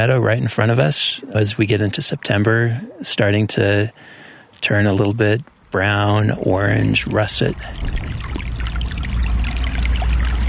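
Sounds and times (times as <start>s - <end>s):
speech: 0.0s - 8.1s
snowmelt-fed brook in a subalpine meadow in Rocky Mountain National Park: 6.3s - 10.4s.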